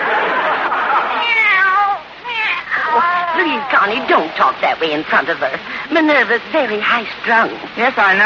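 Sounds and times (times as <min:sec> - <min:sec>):
laughter: 0:00.0 - 0:01.4
kitten meowing: 0:01.2 - 0:04.0
speech: 0:03.8 - 0:08.2.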